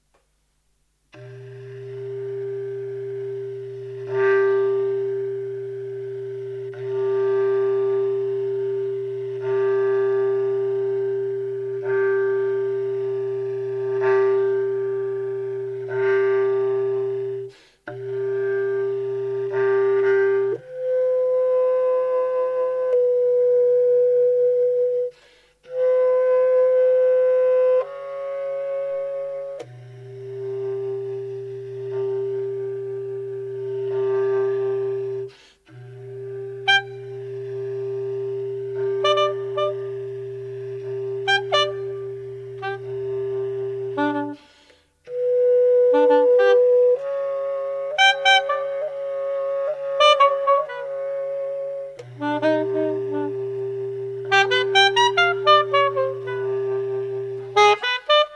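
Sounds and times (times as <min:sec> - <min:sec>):
bass clarinet: 0:01.1 - 0:58.3
soprano saxophone: 0:01.1 - 0:58.3.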